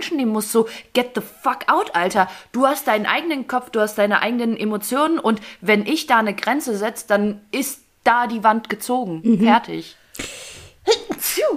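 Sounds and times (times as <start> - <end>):
speech: 0.0 - 11.5
forceful sneeze: 10.2 - 11.5.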